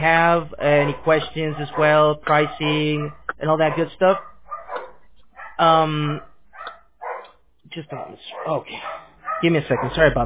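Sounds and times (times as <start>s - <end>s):
speech: 0.0s - 4.3s, 5.6s - 6.3s, 7.7s - 10.2s
dogs barking at home: 0.6s - 10.2s.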